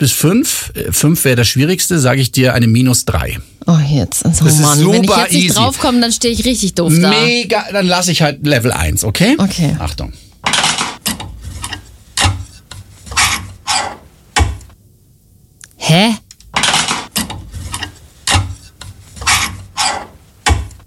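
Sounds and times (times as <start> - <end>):
speech: 0.0 - 10.6
clothes hangers scraping along a wardrobe rail: 10.4 - 14.1, 16.6 - 20.6.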